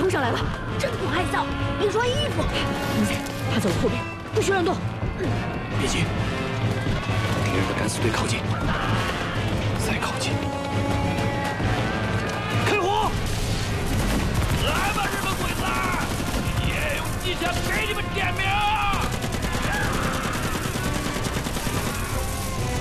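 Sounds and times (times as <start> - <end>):
speech: 0.2 - 9.2, 9.8 - 11.1, 17.3 - 19.0
rapid gunshots in battle: 6.8 - 22.7
voices shouting over the fighting: 8.4 - 10.1, 11.0 - 13.3, 14.4 - 22.7
machine-gun bursts in battle: 13.6 - 22.7.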